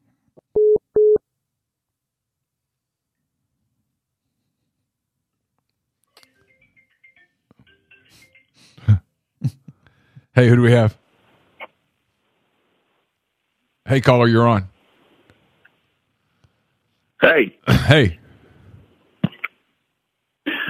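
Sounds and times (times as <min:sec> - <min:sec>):
telephone busy tone beeps on a phone line after caller hung up: 0:00.6 - 0:01.2
speech: 0:10.4 - 0:11.0, 0:13.9 - 0:14.7, 0:17.2 - 0:18.2.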